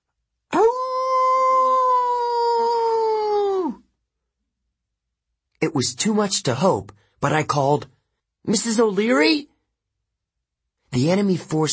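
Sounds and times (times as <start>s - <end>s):
dog howling: 0.5s - 3.8s
speech: 5.8s - 9.5s, 10.9s - 11.7s.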